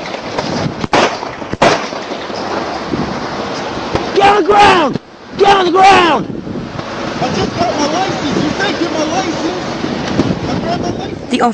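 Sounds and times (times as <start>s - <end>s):
steady rushing noise: 0.0s - 11.5s
gunshots fired by a state trooper at a petrol station in South Carolina: 0.8s - 2.3s
speech: 4.3s - 6.4s, 7.2s - 9.8s, 10.6s - 11.5s.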